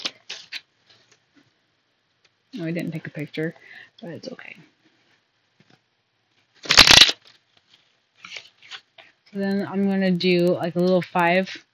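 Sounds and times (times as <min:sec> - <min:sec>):
speech: 0:02.5 - 0:04.8, 0:09.3 - 0:11.7
deck of tarot cards being shuffled: 0:06.5 - 0:09.0.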